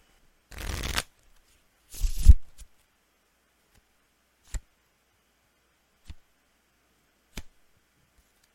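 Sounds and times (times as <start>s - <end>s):
deck of tarot cards riffle shuffled for a reading: 0.5s - 1.1s, 1.9s - 2.4s.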